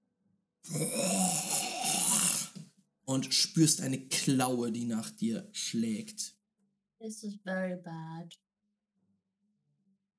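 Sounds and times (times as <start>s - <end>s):
speech: 0.7s - 1.1s, 3.1s - 6.4s, 7.0s - 8.4s
small grunts: 0.7s - 2.6s
voice imitating a monstrous hiss with a wet gurgling rasp: 0.7s - 2.6s.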